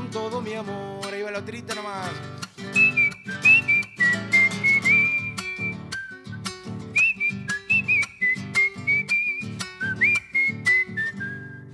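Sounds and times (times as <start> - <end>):
steady rhythmic strummed accompaniment: 0.0 - 11.7
speech: 0.5 - 2.9
person whistling a lilting folk tune: 2.5 - 11.7.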